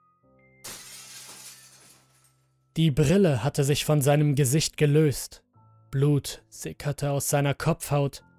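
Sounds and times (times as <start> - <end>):
glass window shattering: 0.6 - 2.4
tinkling glass shards: 0.6 - 2.5
speech: 2.8 - 8.3.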